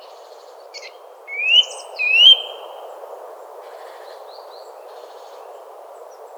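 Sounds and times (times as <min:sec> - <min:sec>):
Eurasian nuthatch Sitta europaea whistled calls: 0:01.4 - 0:02.7.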